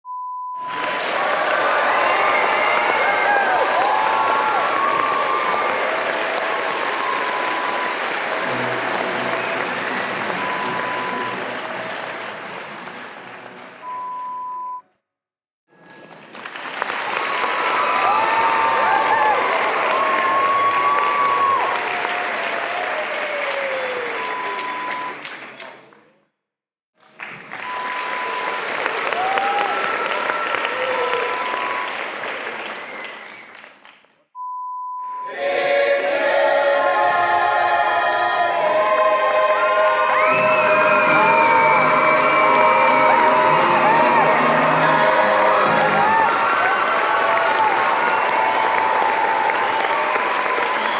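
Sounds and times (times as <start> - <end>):
theatre audience sounds: 0.6 - 14.2, 15.7 - 26.1, 27.0 - 33.9, 35.3 - 50.9.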